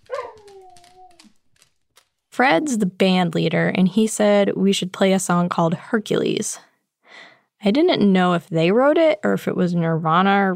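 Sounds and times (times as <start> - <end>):
boxer dog whining: 0.0 - 1.4
scuffling: 0.0 - 2.3
speech: 2.4 - 6.7, 7.6 - 10.5.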